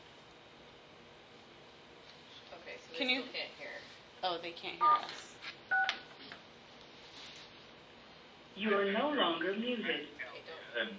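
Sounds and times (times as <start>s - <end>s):
speech: 2.7s - 5.4s, 8.6s - 10.2s, 10.8s - 10.9s
telephone keypad tones dialing star six on a teleconference line: 5.7s - 6.0s.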